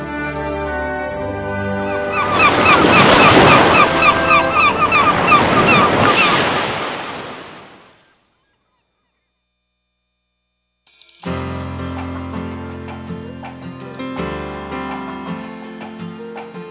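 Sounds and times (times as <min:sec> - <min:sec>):
ocean waves crashing: 0:01.6 - 0:08.0
wind noise: 0:01.9 - 0:07.7.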